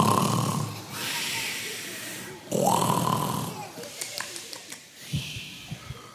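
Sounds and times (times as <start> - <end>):
voice imitating turtles snoring: 0.0 - 1.0, 2.5 - 3.7.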